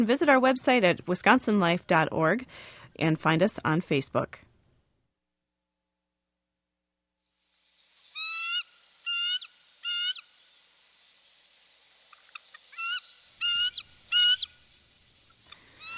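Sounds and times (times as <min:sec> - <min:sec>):
speech: 0:00.0 - 0:04.4
bald eagle peal call: 0:08.0 - 0:10.4, 0:12.1 - 0:15.9.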